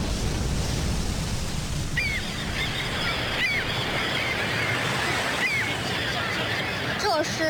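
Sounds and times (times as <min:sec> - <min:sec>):
steady broadband wash at a naval harbor: 0:00.0 - 0:07.4
honking gull or goose-like calls: 0:01.9 - 0:07.0.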